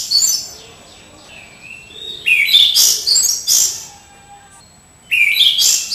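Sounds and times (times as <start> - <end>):
orange-sided thrush singing: 0.0 - 4.7.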